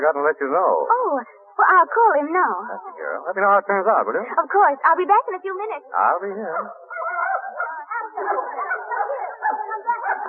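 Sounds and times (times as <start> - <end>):
speech: 0.0 - 6.8, 8.2 - 8.6
dog whimpering and yipping: 6.6 - 10.2.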